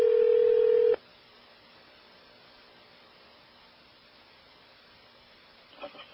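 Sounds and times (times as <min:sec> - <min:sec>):
telephone ring tone: 0:00.0 - 0:01.0.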